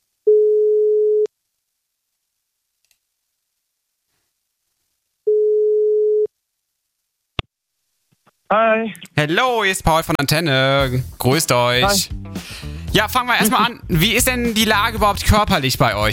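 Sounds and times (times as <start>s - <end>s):
telephone ringing tone after dialing a call: 0.3s - 1.3s, 5.3s - 6.3s
speech: 8.5s - 16.1s.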